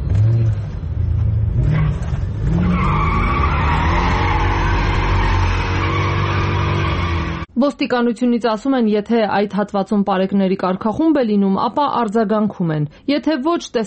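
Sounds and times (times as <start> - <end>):
roaring car engine: 0.0 - 7.5
tires screeching from a car speeding through city streets at night: 0.0 - 7.5
speech: 7.6 - 13.8.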